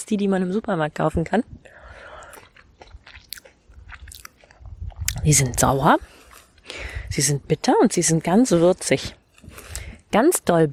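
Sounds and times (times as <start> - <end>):
speech: 0.0 - 1.8, 5.2 - 6.1, 6.7 - 9.2, 10.1 - 10.7
biting into and chewing a fresh blueberry: 1.7 - 6.8.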